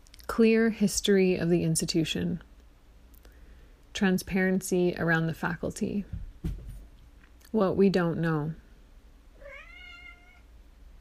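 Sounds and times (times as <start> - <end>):
speech: 0.4 - 2.5, 4.0 - 6.6, 7.5 - 8.6
house cat meowing: 9.4 - 10.5.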